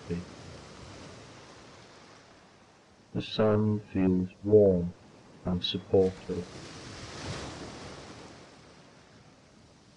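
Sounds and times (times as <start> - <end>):
ocean surf rolling onto shore: 0.0 - 3.5, 5.0 - 9.9
speech: 0.1 - 0.4, 3.1 - 6.8.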